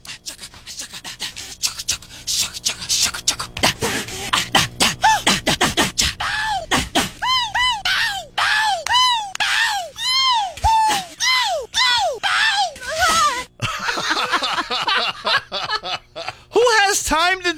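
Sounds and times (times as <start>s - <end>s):
singer's non-word vocal noises edited together by intensity: 0.0s - 13.5s
laughter: 12.8s - 17.0s.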